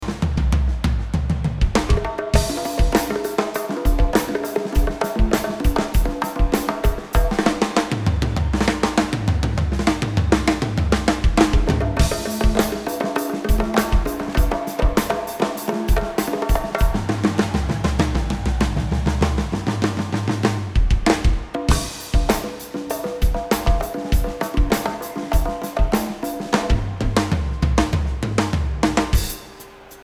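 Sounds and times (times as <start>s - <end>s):
bass: 0.0s - 2.5s, 8.0s - 12.1s, 17.0s - 21.8s, 26.7s - 29.3s
drums: 0.0s - 30.0s.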